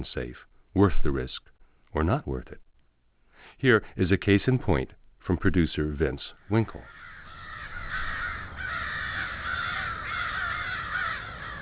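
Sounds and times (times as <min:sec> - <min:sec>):
speech: 0:00.0 - 0:02.7, 0:03.6 - 0:07.0
large flock of crows cawing in trees above 101st Street in Niagara Falls: 0:06.4 - 0:11.6.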